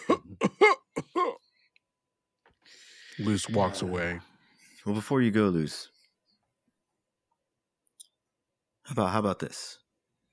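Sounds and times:
person coughing up blood with hacking coughs: 0:00.0 - 0:01.5
speech: 0:03.2 - 0:05.9, 0:08.9 - 0:09.8.

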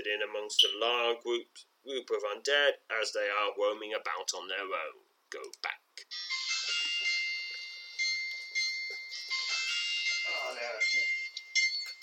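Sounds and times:
speech: 0:00.1 - 0:06.8, 0:10.5 - 0:11.2
shrill steady electronic alarm ringing: 0:06.1 - 0:12.0.

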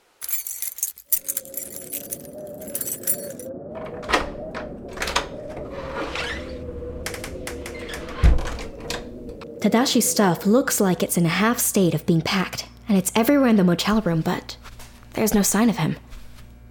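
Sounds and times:
ring of motel keys jangling: 0:00.0 - 0:03.5
speech: 0:09.6 - 0:14.6, 0:15.2 - 0:16.0.

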